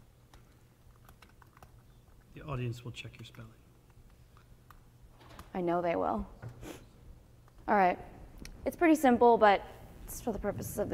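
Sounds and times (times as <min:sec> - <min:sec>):
soft typing on a computer keyboard: 0:00.3 - 0:02.2
speech: 0:02.4 - 0:03.6, 0:05.6 - 0:06.8, 0:07.7 - 0:10.9.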